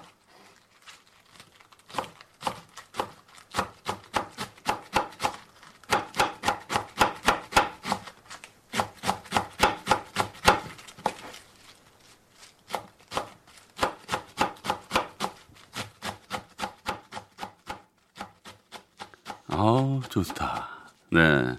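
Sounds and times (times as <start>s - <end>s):
knife chopping food on a cutting board in a kitchen: 1.9s - 8.1s, 8.7s - 11.2s, 12.7s - 19.6s
speech: 19.7s - 21.5s.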